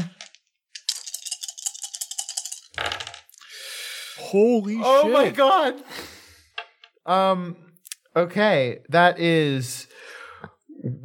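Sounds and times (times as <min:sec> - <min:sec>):
two red dice rattling in a hand or cup: 0:00.0 - 0:03.5
speech: 0:04.3 - 0:06.0, 0:07.1 - 0:07.6, 0:08.2 - 0:09.8.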